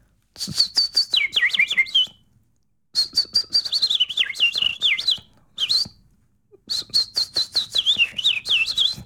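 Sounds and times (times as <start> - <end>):
person whistling bird imitation: 0.4 - 2.2, 3.0 - 6.0, 6.7 - 9.0.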